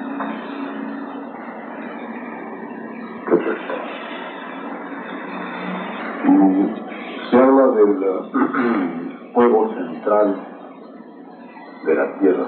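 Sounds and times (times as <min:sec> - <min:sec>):
car engine and road noise: 0:00.0 - 0:12.4
speech: 0:06.4 - 0:10.5, 0:11.8 - 0:12.4.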